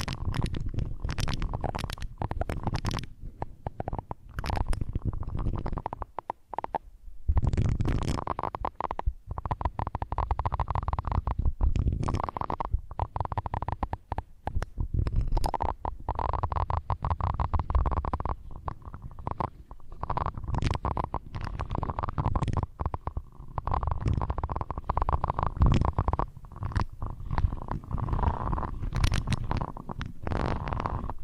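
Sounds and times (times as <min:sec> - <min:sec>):
dense irregular rubbing and scraping: 0:00.0 - 0:06.2, 0:09.4 - 0:31.2
face brushing: 0:00.0 - 0:06.7, 0:07.3 - 0:31.2
muffled ear scratching: 0:00.0 - 0:31.2
sharp crackles: 0:00.0 - 0:31.2.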